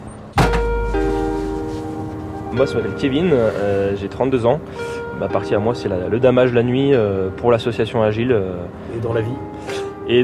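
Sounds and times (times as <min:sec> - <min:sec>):
snow groomer cab door shutting with a solid thud: 0:00.4 - 0:00.9
snow groomer engine humming: 0:00.4 - 0:10.2
speech: 0:02.5 - 0:10.2.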